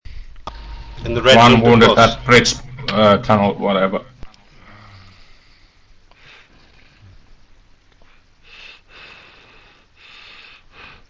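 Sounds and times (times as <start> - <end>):
speech: 1.0 - 4.1
heavy breathing: 4.4 - 7.2, 8.0 - 11.0.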